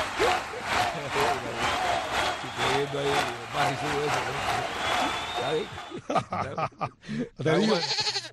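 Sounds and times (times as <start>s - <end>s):
laughter: 0.1s - 1.7s, 2.4s - 7.9s
speech: 2.9s - 8.2s
young goat bleating: 7.6s - 8.3s.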